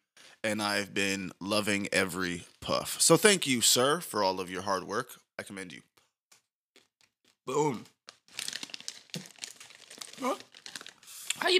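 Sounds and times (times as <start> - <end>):
speech: 0.4 - 5.9, 7.5 - 7.9, 10.2 - 10.4
plastic chip bag crinkling at the microphone: 6.8 - 11.4.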